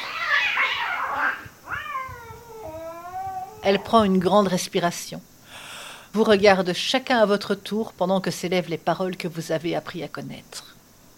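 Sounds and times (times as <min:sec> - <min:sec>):
wild cat yowling: 0:00.0 - 0:04.0
speech: 0:03.6 - 0:05.3, 0:06.1 - 0:10.7.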